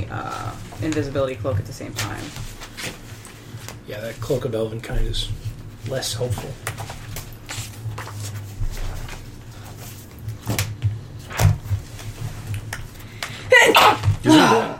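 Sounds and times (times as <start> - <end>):
speech: 0.0 - 3.0, 3.9 - 6.9
steady low hum: 0.0 - 14.7
person sneezing: 13.5 - 14.7.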